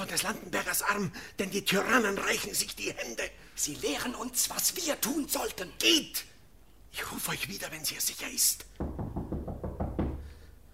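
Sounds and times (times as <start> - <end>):
speech: 0.1 - 6.3, 6.9 - 9.0
knocking on a wooden door: 8.8 - 10.4.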